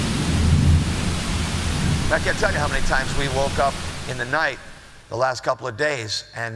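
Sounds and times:
deep rolling thunder: 0.0 - 5.1
heavy rain downpour: 0.0 - 5.1
speech: 2.1 - 6.5.

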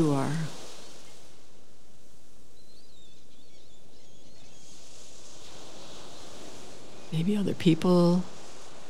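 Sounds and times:
speech: 0.0 - 0.6, 7.1 - 8.4
ocean surf: 0.0 - 8.8
faint bird chirps: 2.5 - 4.8.

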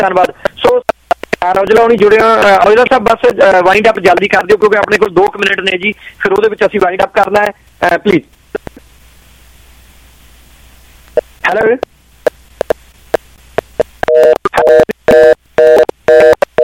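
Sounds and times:
speech: 0.0 - 8.4, 11.4 - 12.0, 14.2 - 14.9
brief voice fragments on a telephone line: 0.0 - 8.8, 11.4 - 11.9
faint telephone line hiss: 0.0 - 15.6
telephone line tones after a phone call drops: 14.0 - 16.6.

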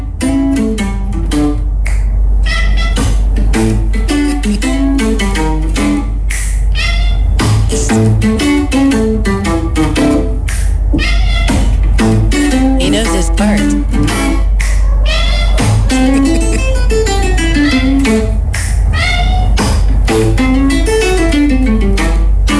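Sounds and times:
bluesy guitar music: 0.0 - 22.5
cat meowing along to blues music: 14.7 - 16.6.

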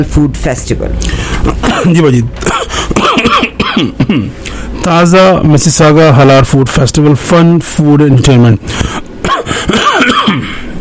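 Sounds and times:
speech: 0.0 - 10.6
person coughing into a microphone after water went down the wrong way: 1.4 - 4.4, 8.7 - 10.8.

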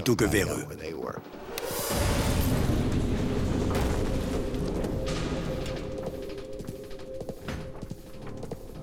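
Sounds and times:
speech: 0.0 - 2.2
muffled explosion boom with rumbling roar: 1.9 - 6.8
crackles and debris-like clatter: 1.9 - 8.7.

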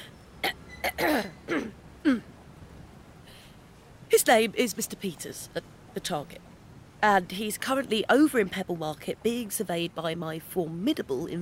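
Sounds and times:
person clearing their nose and throat to decongest: 0.9 - 2.3
speech: 0.9 - 2.3, 4.2 - 11.4.

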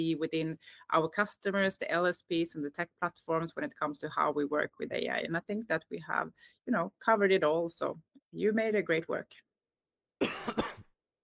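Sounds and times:
speech: 0.0 - 9.5, 10.2 - 10.7
person coughing: 10.2 - 10.9.

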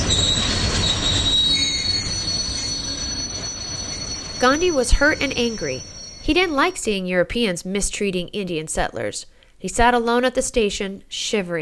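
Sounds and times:
train wheels squealing on rails: 0.0 - 7.0
speech: 4.4 - 11.5.

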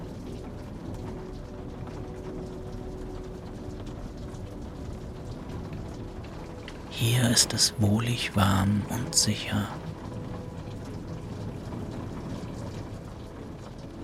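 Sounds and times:
steady rain pattering against window panes: 0.0 - 14.0
speech: 7.0 - 9.8.

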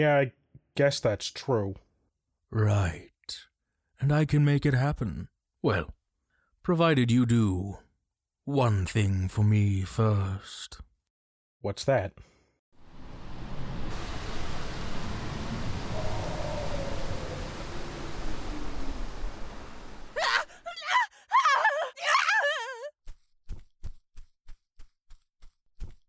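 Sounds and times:
speech: 0.0 - 1.8, 2.5 - 6.0, 6.6 - 7.8, 8.5 - 10.9, 11.6 - 12.3
steady rushing hiss: 13.0 - 20.2
loud wavering high-pitched scream: 20.2 - 22.9.

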